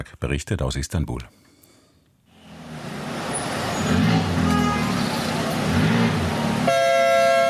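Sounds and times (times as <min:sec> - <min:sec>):
speech: 0:00.0 - 0:01.4
dense city traffic rumbling: 0:02.2 - 0:07.4
car horns honking: 0:03.3 - 0:07.4
long loud horn blast: 0:03.8 - 0:07.4.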